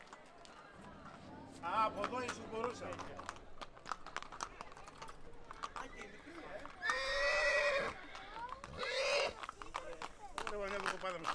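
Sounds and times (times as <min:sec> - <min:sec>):
speech: 0:01.6 - 0:03.3, 0:10.7 - 0:11.3
horse neighing: 0:05.9 - 0:09.4.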